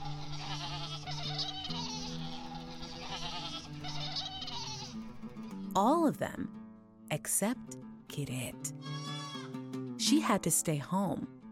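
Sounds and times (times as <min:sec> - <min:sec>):
several goats bleating: 0:00.0 - 0:05.2, 0:08.8 - 0:09.6
speech: 0:05.8 - 0:09.0, 0:10.0 - 0:11.4.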